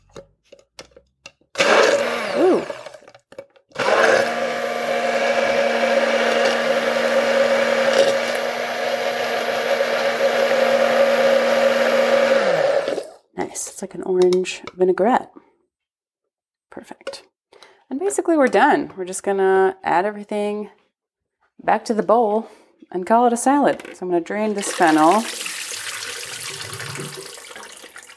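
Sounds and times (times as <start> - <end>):
immersion blender blending orange vinaigrette dressing: 1.6 - 3.1, 3.7 - 13.2, 24.6 - 28.1
speech: 13.9 - 15.2, 18.3 - 20.8, 21.6 - 25.4.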